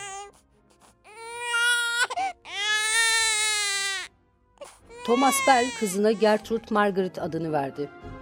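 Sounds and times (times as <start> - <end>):
newborn baby girl crying: 0.0 - 0.4, 1.0 - 6.4
speech: 5.0 - 8.2.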